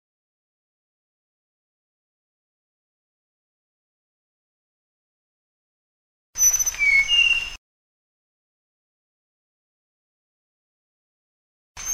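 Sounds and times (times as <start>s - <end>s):
Sunda flycatcher giving thin high whistled notes: 6.4s - 7.6s.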